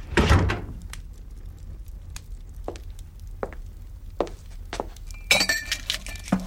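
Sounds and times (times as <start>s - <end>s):
door shutting with a thud: 0.0s - 0.8s
glass clinking and tapping: 5.2s - 6.3s.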